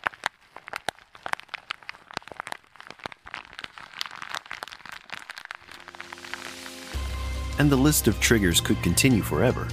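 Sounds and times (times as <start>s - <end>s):
plastic or foil wrapper crinkling: 0.0s - 7.1s
speech: 7.6s - 9.7s.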